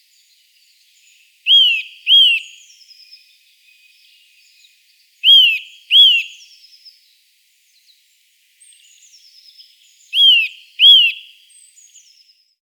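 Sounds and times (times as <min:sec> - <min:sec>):
Eurasian nuthatch Sitta europaea calling in high paired whistles: 0:01.5 - 0:02.6, 0:05.2 - 0:06.4, 0:10.2 - 0:11.3.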